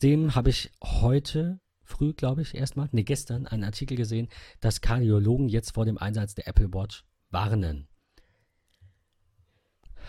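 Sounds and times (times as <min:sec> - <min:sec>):
speech: 0:00.0 - 0:07.9
quiet breathing: 0:04.3 - 0:04.7, 0:08.0 - 0:10.0.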